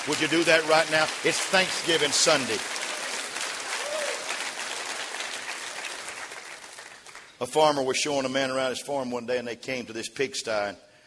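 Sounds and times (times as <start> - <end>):
speech: 0.0 - 2.8, 7.4 - 10.9
audience clapping hands in praise: 0.0 - 7.3.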